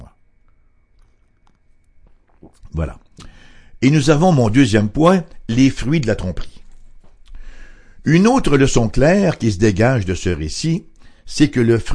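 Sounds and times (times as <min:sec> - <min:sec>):
person sipping tea: 0:01.0 - 0:03.5
person swallowing tea: 0:02.3 - 0:03.4
speech: 0:02.8 - 0:06.6, 0:08.0 - 0:11.9.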